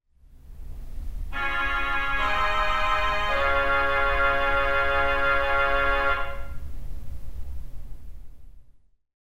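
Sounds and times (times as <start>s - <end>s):
saxophone: 1.3s - 6.6s
theatre organ: 1.3s - 6.6s.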